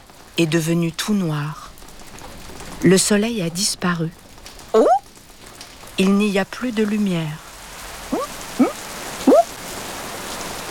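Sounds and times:
speech: 0:00.4 - 0:01.6, 0:02.8 - 0:05.0, 0:06.0 - 0:07.4
heavy rain hissing: 0:01.2 - 0:10.6.

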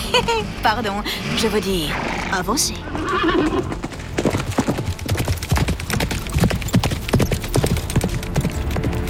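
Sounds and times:
speech: 0:00.2 - 0:03.8
horse whinnying: 0:01.9 - 0:03.8
horse hooves clip-clopping: 0:02.8 - 0:09.0.

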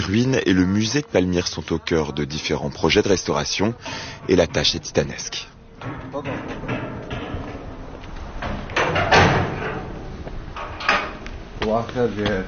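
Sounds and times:
speech: 0:00.0 - 0:06.6, 0:11.6 - 0:12.4
museum door being opened in Palmyra: 0:03.9 - 0:11.6.

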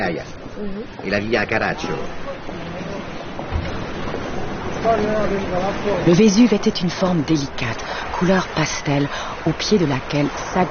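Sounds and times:
speech: 0:00.0 - 0:02.6, 0:04.8 - 0:10.6
rough, very agitated sea waves churning at Naples: 0:00.0 - 0:10.6
low thump: 0:03.4 - 0:04.3.

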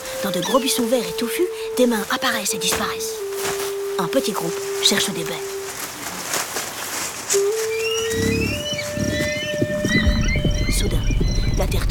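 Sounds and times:
speech: 0:00.2 - 0:05.6, 0:07.3 - 0:09.0
birds chirping: 0:07.4 - 0:11.8
horses galloping at full speed: 0:07.5 - 0:11.7.

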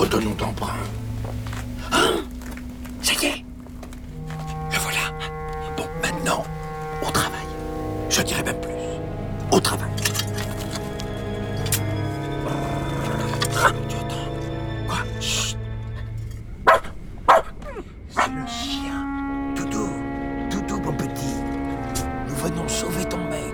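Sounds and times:
steady tonal background: 0:00.0 - 0:23.5
speech: 0:00.1 - 0:02.2
small dog barking: 0:16.7 - 0:18.4.

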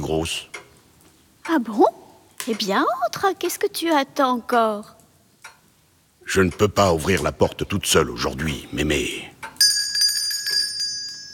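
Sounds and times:
speech: 0:00.0 - 0:00.6, 0:01.5 - 0:05.0, 0:06.3 - 0:09.6
small hand bell rung at a door: 0:09.6 - 0:11.3.

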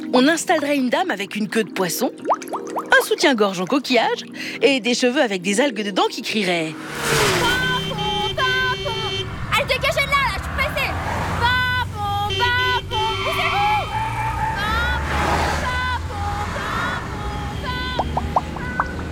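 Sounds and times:
speech: 0:00.1 - 0:07.4
two-tone fire truck siren wailing in alternating pitches: 0:07.4 - 0:19.0.

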